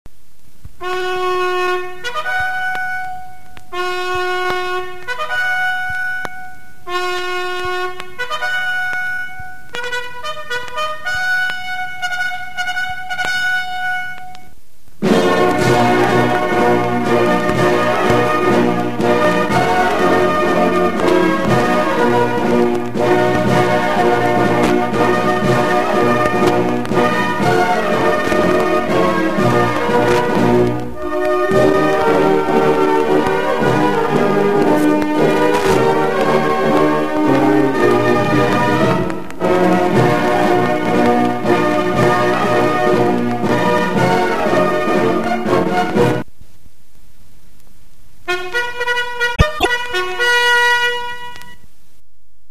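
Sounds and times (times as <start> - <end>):
military barracks flag-raising bugle call: 0.8 - 46.2, 48.3 - 51.6.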